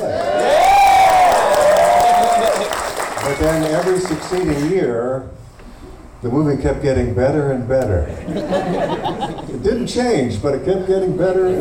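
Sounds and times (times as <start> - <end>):
audience cheering loudly: 0.0 - 4.7
sustained whistle-like whoop: 0.4 - 2.6
speech: 3.4 - 5.4, 6.2 - 11.5
laughter: 8.1 - 9.6.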